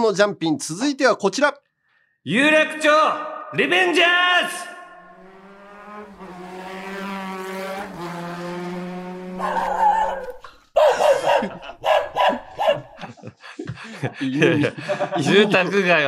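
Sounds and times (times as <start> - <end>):
speech: 0.0 - 1.6, 2.2 - 4.8, 9.4 - 9.9, 13.8 - 16.0
vehicle engine driving through a residential area: 5.0 - 9.8
dog barking: 9.4 - 13.0
laughter: 10.8 - 16.0.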